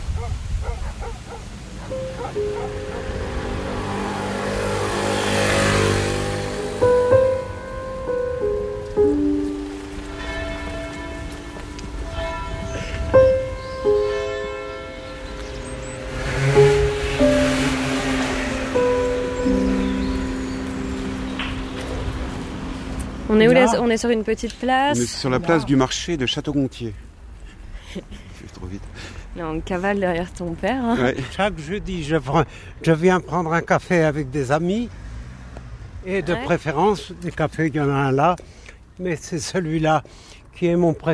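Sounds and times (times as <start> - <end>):
outdoor street ambience in a small town: 0.0 - 41.1
dog barking: 0.2 - 3.1
sustained tonal notes ringing out: 1.8 - 25.3
speech: 2.3 - 2.9, 23.4 - 27.0, 29.4 - 35.0, 36.0 - 41.1.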